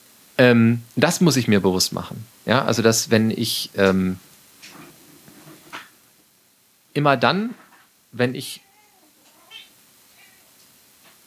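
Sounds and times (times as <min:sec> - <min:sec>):
quiet hiss: 0:00.0 - 0:11.2
speech: 0:00.4 - 0:04.3, 0:07.0 - 0:08.6
cat meowing faintly: 0:08.6 - 0:10.5.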